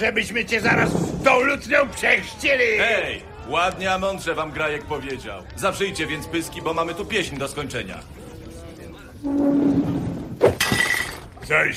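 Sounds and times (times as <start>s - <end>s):
speech: 0.0s - 8.2s, 9.2s - 10.5s, 11.5s - 11.7s
cups being smashed: 10.5s - 11.3s.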